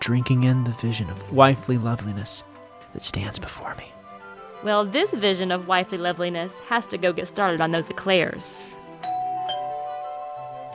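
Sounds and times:
speech: 0.0 - 4.0, 4.6 - 8.8
doorbell two-tone ding-dong chime: 9.0 - 10.7.

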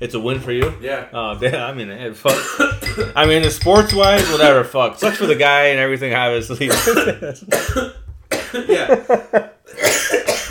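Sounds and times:
speech: 0.0 - 9.5
loud harsh cough fit: 2.3 - 3.0, 6.7 - 9.0, 9.7 - 10.4
laughter: 8.5 - 9.6.

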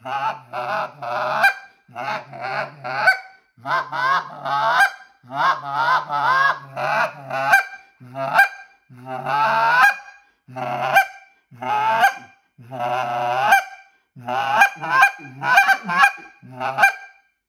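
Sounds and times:
laughter: 0.0 - 11.0, 11.6 - 13.5, 14.2 - 17.0
goose call blown imitating honking geese: 3.0 - 8.6, 9.4 - 17.1.

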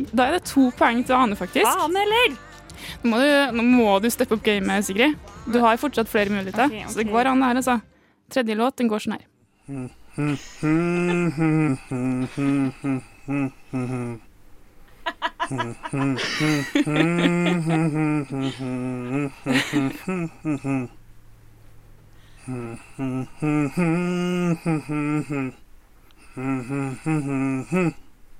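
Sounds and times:
speech: 0.0 - 14.3, 15.1 - 21.0, 22.5 - 25.6, 26.4 - 28.0
single voice humming a song melody: 9.7 - 14.3, 15.2 - 21.0, 22.4 - 25.6, 26.2 - 28.1
faint breathy chuckle: 10.2 - 14.2, 15.0 - 20.9.

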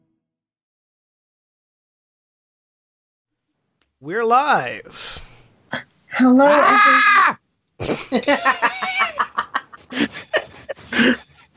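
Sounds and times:
speech: 4.0 - 5.2, 6.2 - 9.2
person imitating a Wookiee scream with howls, growls and yowls: 6.1 - 7.4
laughter: 6.6 - 11.5.

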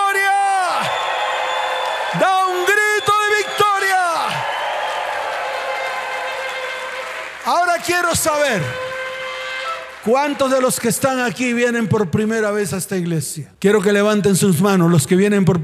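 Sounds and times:
people shouting and whooping in celebration: 0.0 - 10.6
audience applause: 0.6 - 11.5
speech: 7.5 - 8.8, 10.0 - 15.6.

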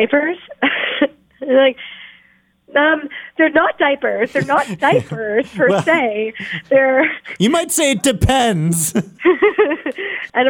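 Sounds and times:
speech: 0.0 - 0.6, 1.5 - 1.9, 2.7 - 10.4
laughter: 4.1 - 10.2
pregnant woman coughing harshly: 4.4 - 6.7.

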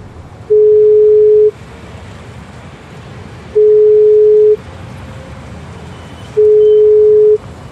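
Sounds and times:
low rumbling road noise from a car being driven: 0.0 - 7.7
electronic phone ringback tone: 0.5 - 1.5, 3.6 - 4.6, 6.4 - 7.4.

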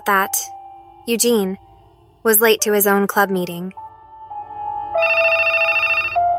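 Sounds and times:
speech: 0.0 - 1.6, 2.2 - 3.8
telephone ringing with electronic warble: 5.0 - 6.3.

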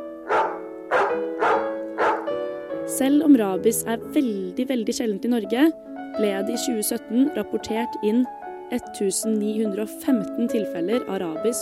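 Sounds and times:
dog barking: 0.2 - 2.4
speech: 2.9 - 11.6.

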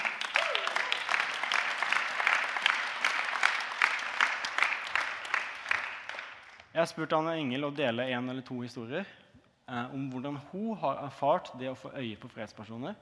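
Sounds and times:
audience applause for a speaker being introduced: 0.0 - 6.6
speech: 6.8 - 13.0.

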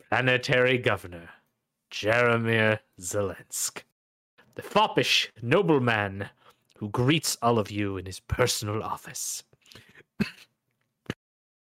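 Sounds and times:
speech: 0.1 - 3.9, 4.6 - 10.5
person performing a theatrical coughing fit of a dying character: 10.1 - 10.5.

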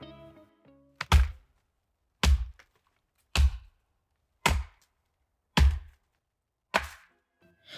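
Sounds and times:
axe chopping into a tree trunk: 1.0 - 1.4, 2.2 - 2.7, 3.3 - 3.7, 4.4 - 4.8, 5.6 - 6.0, 6.7 - 7.1.

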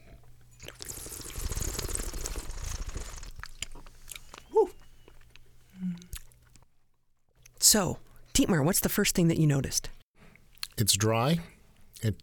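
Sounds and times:
person slurping wine while tasting it, pulling air over the tongue: 0.6 - 3.9
soft mouth sounds: 0.6 - 6.4
speech: 7.7 - 10.0, 10.8 - 12.2.

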